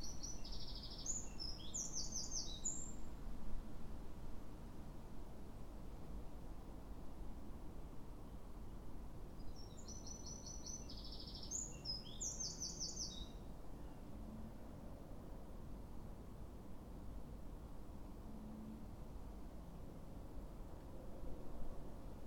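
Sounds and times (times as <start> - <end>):
Eurasian wren Troglodytes troglodytes song: 0.0 - 3.1, 9.4 - 14.1
constant background hiss: 0.0 - 22.2.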